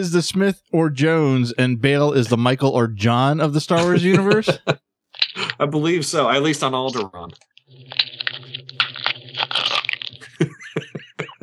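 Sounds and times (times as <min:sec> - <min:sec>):
speech: 0:00.0 - 0:04.9, 0:05.6 - 0:08.0
laughter: 0:03.7 - 0:05.6, 0:10.2 - 0:11.4
wet chewing and smacking: 0:05.1 - 0:05.6, 0:06.8 - 0:10.4
cookie crunching: 0:05.1 - 0:05.7, 0:06.3 - 0:11.4.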